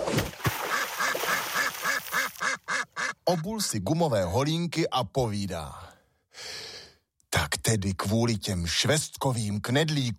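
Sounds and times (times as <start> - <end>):
frightened ducks quacking on a pond: 0.6 - 3.6
speech: 3.3 - 5.9, 7.6 - 10.1.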